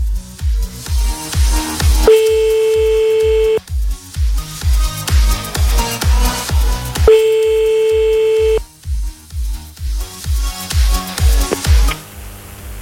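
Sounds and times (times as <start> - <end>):
rhythmic music bed with thumping beats: 0.0 - 12.0
French telephone ringback tone: 2.1 - 3.6, 7.1 - 8.6.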